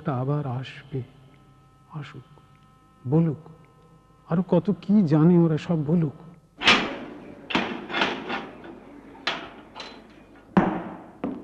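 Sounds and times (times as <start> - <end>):
speech: 0.0 - 1.2, 1.9 - 2.4, 3.0 - 3.6, 4.3 - 6.2
door opening: 6.6 - 11.0.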